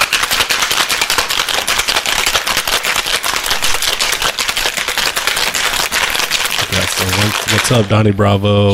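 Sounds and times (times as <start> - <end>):
cocktail being shaken by hand: 1.0 - 7.9
speech: 7.0 - 8.7.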